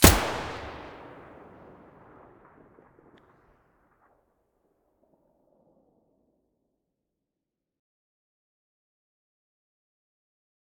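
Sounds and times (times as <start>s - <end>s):
Vepr rifle muzzle blast in mono: 0.0s - 3.4s.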